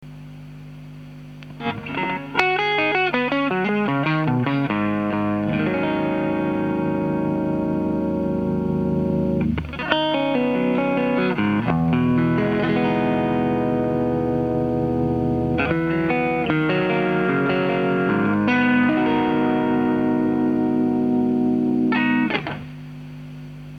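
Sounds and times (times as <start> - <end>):
clean drive tone through compression sustainer pedal: 0.0 - 23.7.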